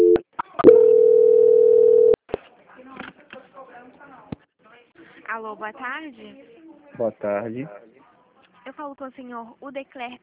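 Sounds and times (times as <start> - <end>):
telephone call transfer tone: 0.0 - 2.2
speech: 5.4 - 7.9, 8.7 - 10.2.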